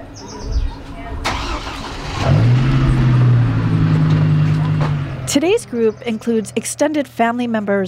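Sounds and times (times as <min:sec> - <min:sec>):
speech: 0:00.2 - 0:00.6, 0:05.3 - 0:07.8
car engine cranking and idling as a small caravan of cars departs: 0:01.2 - 0:05.6.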